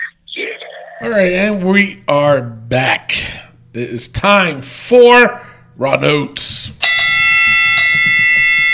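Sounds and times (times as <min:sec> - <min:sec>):
speech: 0:01.0 - 0:06.8
bell ringing: 0:06.8 - 0:08.7.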